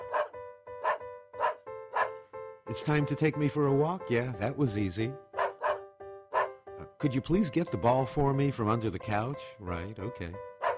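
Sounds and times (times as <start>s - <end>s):
dog barking: 0.0s - 2.2s, 5.4s - 6.6s, 10.6s - 10.7s
speech: 2.7s - 5.2s, 7.0s - 10.5s.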